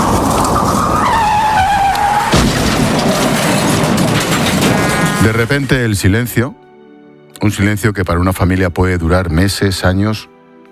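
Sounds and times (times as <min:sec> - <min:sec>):
car tires screeching under hard braking: 0:00.0 - 0:05.7
car crunching impact: 0:00.0 - 0:05.8
road noise: 0:00.0 - 0:05.9
speech: 0:05.2 - 0:06.6, 0:07.4 - 0:10.3.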